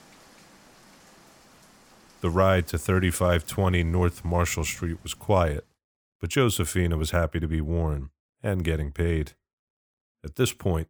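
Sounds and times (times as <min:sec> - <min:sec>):
steady rain falling: 0:00.0 - 0:05.6
speech: 0:02.2 - 0:09.4, 0:10.2 - 0:10.8.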